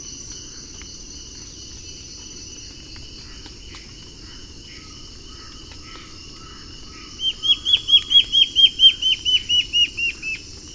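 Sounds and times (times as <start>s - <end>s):
black-faced antbird Myrmoborus myotherinus ochrolaemus whistled song: 7.2s - 10.4s.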